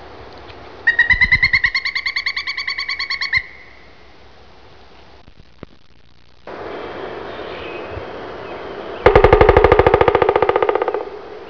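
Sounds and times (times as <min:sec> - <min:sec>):
pileated woodpecker: 0:00.9 - 0:03.5, 0:09.0 - 0:11.4.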